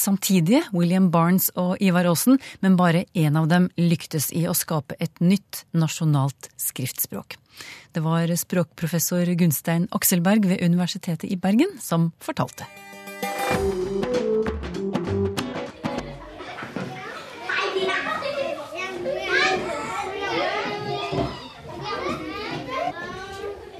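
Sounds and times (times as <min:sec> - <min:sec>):
speech: 0:00.0 - 0:14.1
bright tonal music or toy sounds: 0:12.6 - 0:16.3
children playing and chattering: 0:15.6 - 0:23.7.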